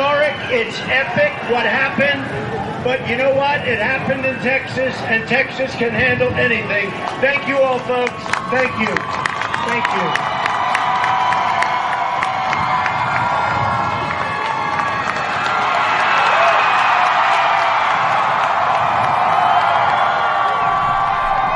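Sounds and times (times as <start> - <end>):
large crowd screaming and cheering: 0.0 - 5.3, 6.6 - 21.5
speech: 0.5 - 10.4
shrill whoops and shouts: 8.6 - 21.5.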